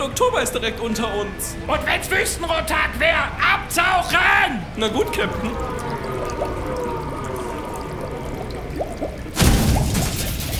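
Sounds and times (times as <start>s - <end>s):
steady mechanical hum in an engine room: 0.0s - 10.5s
speech: 0.1s - 6.6s
water gushing loudly through a leak into an engine room: 4.8s - 10.5s.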